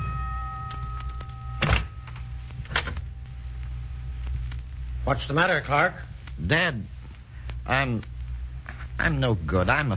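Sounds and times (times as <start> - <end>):
steady low hum: 0.0 - 9.9
dull mechanical clunks of a door being opened: 1.6 - 2.0
speech: 5.0 - 7.0, 7.7 - 8.1, 9.0 - 9.9.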